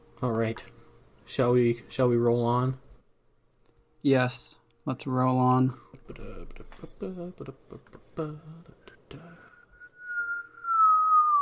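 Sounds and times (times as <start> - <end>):
speech: 0.2 - 2.8, 4.0 - 9.4
person whistling into microphone: 9.5 - 11.4.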